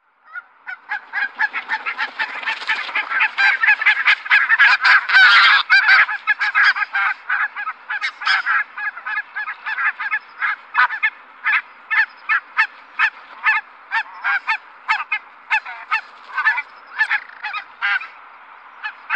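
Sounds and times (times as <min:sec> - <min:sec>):
barnacle goose: 0:00.3 - 0:18.2, 0:18.8 - 0:19.1.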